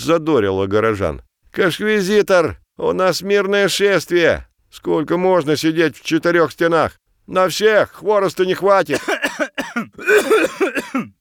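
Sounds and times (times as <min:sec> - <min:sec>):
speech: 0:00.0 - 0:11.1
harsh wet cough with raspy throat sounds: 0:08.9 - 0:11.1.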